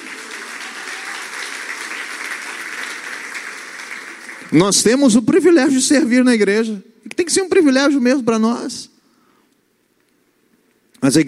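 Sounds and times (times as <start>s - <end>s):
crowd applauding: 0.0s - 4.8s
speech: 4.5s - 8.9s, 11.0s - 11.2s.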